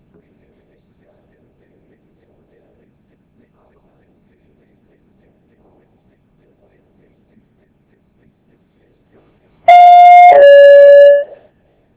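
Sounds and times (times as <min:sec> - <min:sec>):
loud electronic bell ringing in two tones: 0:09.7 - 0:11.4.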